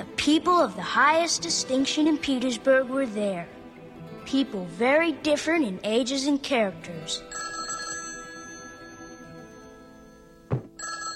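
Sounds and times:
speech: 0.2s - 3.6s, 4.2s - 7.5s
telephone ringing with a bright continuous trill: 7.3s - 11.1s
brief dull knock: 10.5s - 10.8s.

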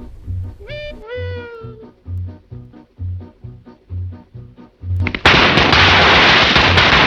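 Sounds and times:
brief rising wavering wail: 0.0s - 2.1s
rhythmic low thumps: 0.0s - 5.7s
string of firecrackers exploding: 5.0s - 7.0s.

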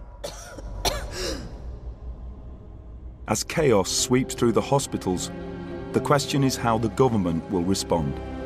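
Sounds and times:
woman coughing harshly: 0.2s - 1.5s
speech: 3.3s - 8.3s.

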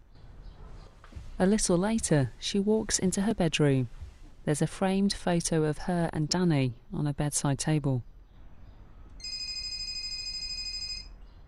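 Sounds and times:
speech: 1.4s - 8.1s
mobile phone electronic ringtone for an incoming call: 9.2s - 11.2s.

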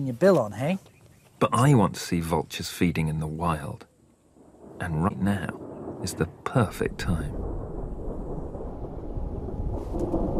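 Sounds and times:
speech: 0.0s - 3.9s, 4.8s - 7.5s
deep rumbling undertone of storm: 4.2s - 10.3s
heavy rain pouring in a storm on the southern Serengeti plain: 4.8s - 10.3s.

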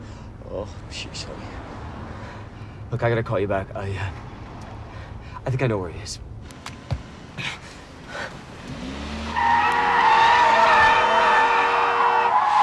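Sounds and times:
car engine: 0.1s - 12.6s
speech: 0.5s - 1.8s, 2.9s - 4.2s, 5.4s - 6.2s
car tires squealing while skidding through a sharp U-turn: 8.4s - 12.6s.

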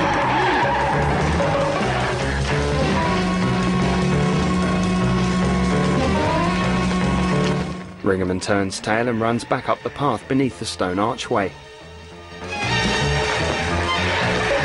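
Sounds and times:
car tyres skidding and squealing: 0.0s - 7.0s, 12.5s - 14.6s
car engine roaring: 0.0s - 8.0s
speech: 8.1s - 11.6s.

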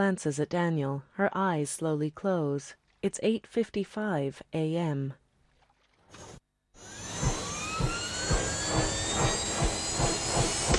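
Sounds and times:
speech: 0.0s - 5.2s
helicopter turbine whine: 6.2s - 10.7s
helicopter rotor blades thumping over the ocean: 6.8s - 10.7s.

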